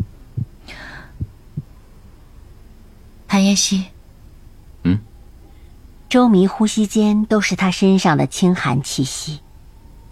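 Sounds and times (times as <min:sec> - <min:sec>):
heartbeat heard through a chest and a white wool sweater: 0:00.0 - 0:01.7
speech: 0:03.3 - 0:04.0, 0:06.1 - 0:09.4.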